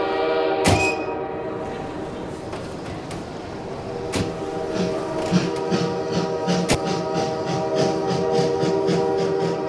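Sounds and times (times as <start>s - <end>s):
train horn: 0.0s - 1.8s, 4.4s - 9.6s
train travelling to Leningrad rumbling and clacking: 0.0s - 9.6s.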